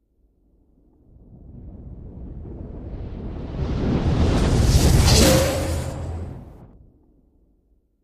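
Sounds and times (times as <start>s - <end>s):
zoom stinger whooshes and swishes: 3.6s - 6.8s.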